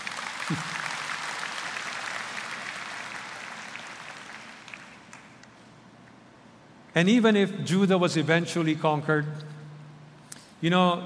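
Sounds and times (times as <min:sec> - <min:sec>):
crowd applauding: 0:00.0 - 0:05.5
speech: 0:00.5 - 0:00.8, 0:07.0 - 0:09.6, 0:10.6 - 0:11.0.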